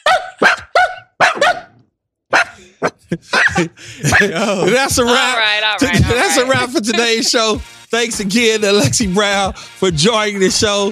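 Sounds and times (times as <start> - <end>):
dog barking: 0.0 - 4.2
laughter: 2.5 - 10.8
speech: 3.1 - 10.8.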